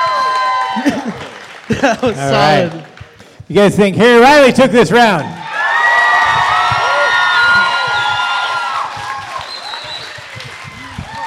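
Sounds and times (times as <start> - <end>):
audience at one table whooping and shouting: 0.0 - 1.2, 5.2 - 11.2
audience at one table clapping: 0.0 - 3.4, 5.4 - 11.2
laughter: 0.8 - 2.8
speech: 0.8 - 2.9, 3.5 - 5.4.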